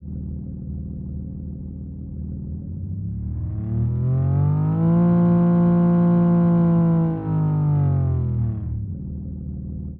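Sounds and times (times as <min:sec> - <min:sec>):
car engine: 0:02.3 - 0:09.8.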